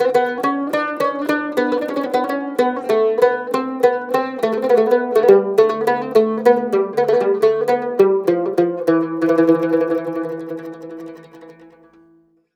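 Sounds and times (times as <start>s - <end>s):
cumbus playing in Mediterranean traditional style: 0.0s - 12.2s.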